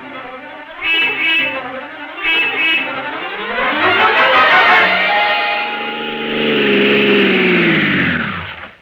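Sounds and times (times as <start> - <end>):
taxi engine revving up and accelerating: 0.0 - 8.8
short horn-like bursts: 0.8 - 4.1.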